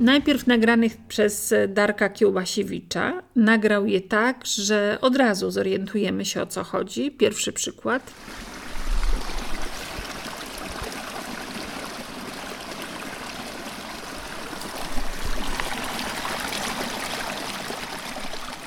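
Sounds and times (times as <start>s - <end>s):
speech: 0.0s - 8.6s
mountain stream rushing: 8.1s - 18.6s.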